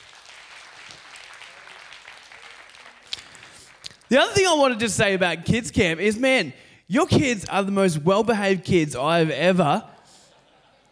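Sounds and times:
audience clapping: 0.0 - 5.4
speech: 4.1 - 9.9
laughter: 10.0 - 10.9.

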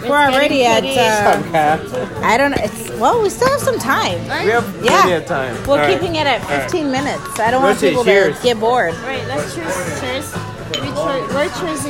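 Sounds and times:
overlapping voices chattering at a birthday celebration: 0.0 - 11.8
speech: 0.1 - 10.4, 11.0 - 11.8
people laughing at a birthday celebration: 1.2 - 2.2
glasses clinking during a toast at a birthday celebration: 10.6 - 11.6.

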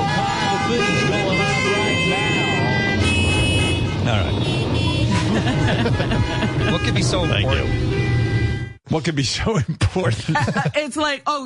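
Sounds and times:
car horns blaring in street: 0.0 - 8.8
dense roar of street traffic: 0.0 - 9.4
laughter: 4.0 - 7.1, 9.6 - 11.0
speech: 6.9 - 8.1, 8.9 - 11.4.

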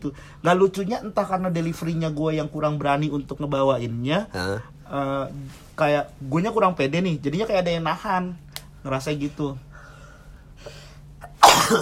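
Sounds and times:
speech: 0.0 - 9.7, 11.6 - 11.8
sneeze: 11.2 - 11.8.

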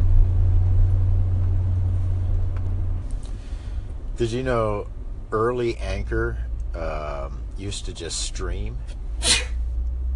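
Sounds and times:
steady low hum: 0.0 - 10.1
speech: 4.2 - 9.4
person sneezing: 9.2 - 9.6.

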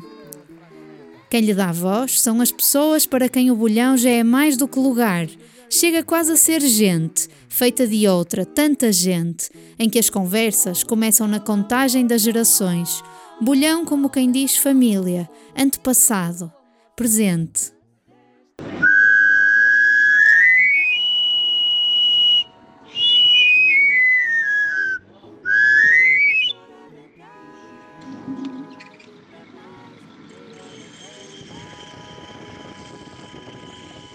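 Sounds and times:
speech: 1.3 - 17.8
knife grinder's panpipe whistle: 18.8 - 26.6.

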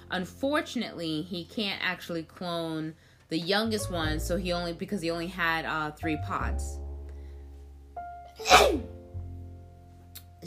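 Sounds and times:
speech: 0.1 - 6.8
person sneezing: 8.4 - 8.9.

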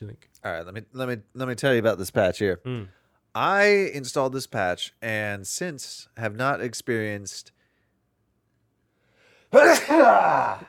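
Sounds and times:
speech: 0.0 - 7.6, 9.5 - 10.6
loud sneeze: 9.5 - 10.6.

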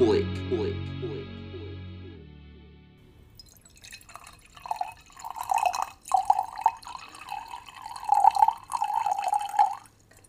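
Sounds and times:
water dripping and trickling in a hotel toilet: 3.4 - 10.2.

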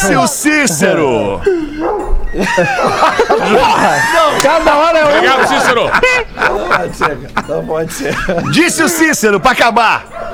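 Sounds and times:
laughter: 0.0 - 9.6
speech: 0.0 - 10.3
several dogs barking and yipping: 1.4 - 4.3, 5.2 - 7.4, 8.1 - 10.3.

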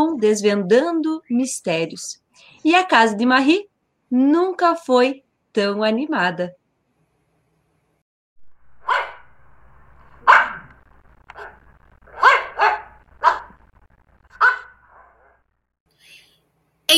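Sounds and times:
speech: 0.2 - 6.6
dogs barking: 8.8 - 9.3, 10.2 - 13.6, 14.3 - 15.4.

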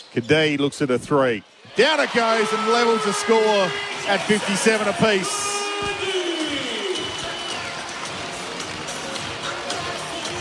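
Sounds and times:
speech: 0.1 - 6.1
arena crowd cheering at a basketball game: 1.6 - 10.3
whistling tones: 6.3 - 7.8.

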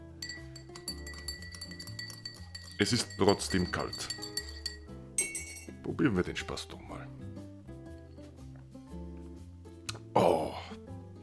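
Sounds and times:
spoon stirring iced coffee in a glass: 0.0 - 5.8
speech: 2.8 - 4.2, 5.9 - 7.1.

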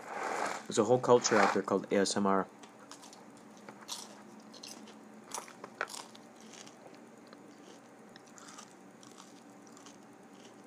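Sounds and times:
speech: 0.7 - 2.6
crunchy food being bitten and chewed: 2.8 - 10.6.

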